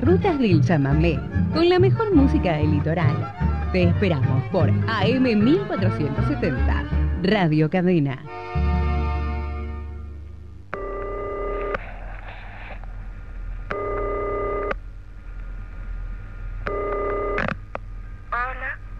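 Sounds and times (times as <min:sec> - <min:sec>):
low steady hum: 0:00.0 - 0:18.9
speech: 0:00.1 - 0:08.6
telephone ringing on a call-in line: 0:10.8 - 0:11.8, 0:13.7 - 0:14.8, 0:16.7 - 0:17.5.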